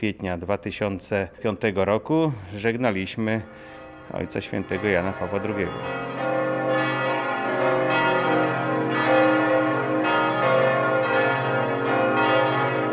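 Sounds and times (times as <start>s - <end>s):
speech: 0.0s - 6.8s
large church bell rung by bell-ringers: 2.6s - 12.9s.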